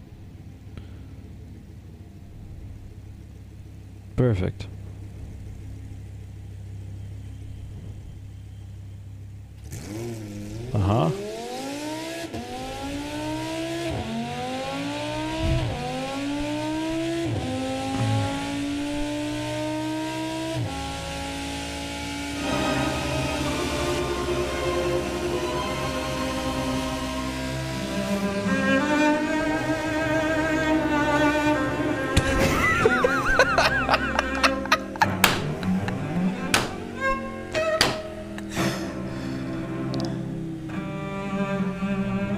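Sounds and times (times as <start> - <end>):
car engine starting and revving: 0.0 - 42.3
speech: 4.2 - 4.8
laughter: 31.8 - 36.9.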